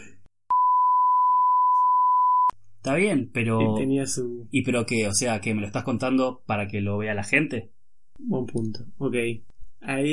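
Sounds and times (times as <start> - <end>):
censorship bleep over speech: 0.5 - 2.6
speech: 2.8 - 10.1.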